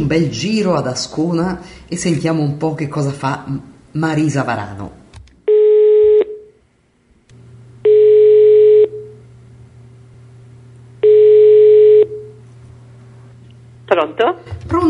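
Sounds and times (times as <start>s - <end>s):
low steady hum: 0.0s - 14.8s
speech: 0.1s - 5.0s, 13.9s - 14.8s
telephone ringback tone on an outgoing call: 5.5s - 6.5s, 7.9s - 9.1s, 11.0s - 12.4s.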